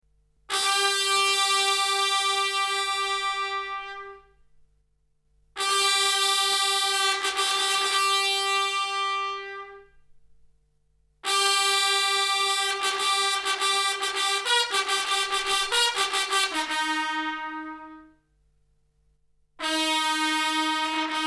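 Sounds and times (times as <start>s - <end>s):
trumpet fanfare: 0.5s - 4.3s, 5.6s - 10.0s, 11.2s - 18.2s, 19.6s - 21.2s.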